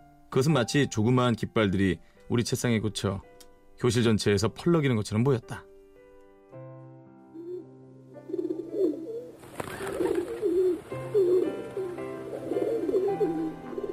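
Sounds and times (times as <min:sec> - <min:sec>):
speech: 0:00.3 - 0:05.7
pigeons cooing: 0:07.3 - 0:13.9.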